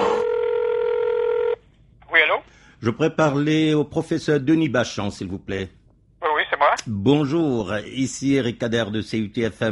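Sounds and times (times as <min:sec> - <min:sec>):
telephone tones as a number is dialed: 0:00.2 - 0:01.6
speech: 0:02.8 - 0:05.8, 0:06.7 - 0:09.7.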